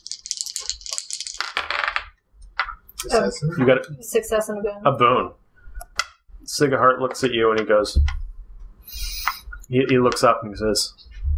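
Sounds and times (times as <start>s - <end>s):
dice clattering across a hard surface: 0.0s - 2.8s
speech: 3.0s - 5.4s, 6.5s - 8.2s, 9.7s - 11.2s.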